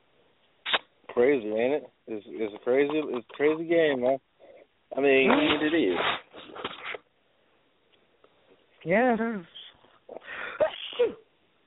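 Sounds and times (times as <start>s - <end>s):
speech: 1.2s - 4.3s, 4.9s - 6.2s, 8.8s - 10.2s
person sneezing: 10.1s - 11.3s.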